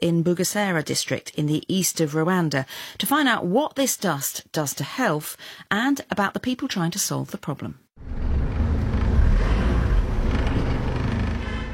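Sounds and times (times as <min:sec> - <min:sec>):
speech: 0:00.0 - 0:08.4
car driving along a road from Kigali into Bugesera district, Rwanda: 0:08.0 - 0:11.7.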